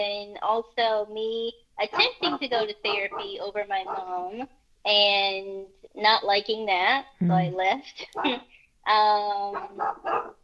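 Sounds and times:
speech: 0:00.0 - 0:10.4
dog barking: 0:01.9 - 0:04.2, 0:09.5 - 0:10.4.

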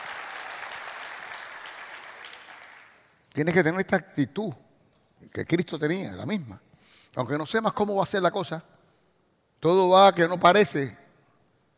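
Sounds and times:
congregation applauding: 0:00.0 - 0:03.1
speech: 0:03.4 - 0:04.6, 0:05.2 - 0:08.8, 0:09.6 - 0:11.0.

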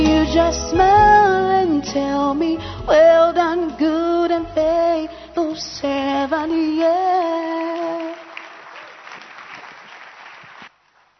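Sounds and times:
speech: 0:00.3 - 0:08.0
audience clapping at an evening event: 0:07.2 - 0:11.1.

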